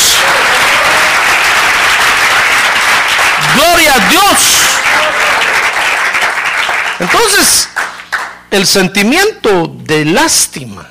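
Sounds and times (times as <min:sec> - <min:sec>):
audience applause at an evening church service: 0:00.0 - 0:08.4
speech: 0:03.7 - 0:05.4, 0:07.0 - 0:07.8, 0:08.5 - 0:10.8.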